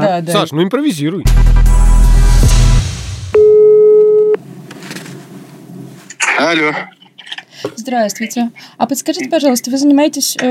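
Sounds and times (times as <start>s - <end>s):
burst of louder noise: 0.0s - 1.3s, 3.1s - 10.5s
speech: 0.1s - 1.9s, 6.4s - 7.0s, 7.6s - 10.5s
telephone ringback tone calling a polygraph company: 3.4s - 4.4s.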